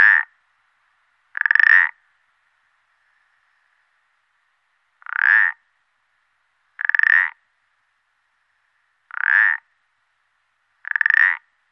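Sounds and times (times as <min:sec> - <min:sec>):
common parsley frog creaking croaks: 0:00.0 - 0:00.4, 0:01.3 - 0:02.0, 0:05.0 - 0:05.6, 0:06.8 - 0:07.4, 0:09.1 - 0:09.7, 0:10.8 - 0:11.5.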